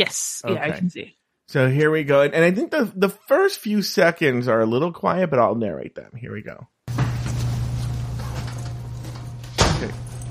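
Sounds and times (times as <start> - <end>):
speech: 0.0 - 6.7, 9.8 - 10.0
loud door slam: 6.9 - 10.2
steady low hum: 6.9 - 10.2.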